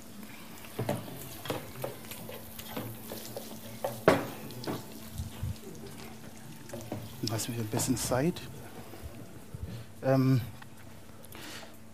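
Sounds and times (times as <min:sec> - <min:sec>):
food frying with a little oil in a pan: 0:00.0 - 0:09.5
utensil stirring and clattering against the pan: 0:00.8 - 0:05.0
speech: 0:07.4 - 0:08.6, 0:10.0 - 0:10.6.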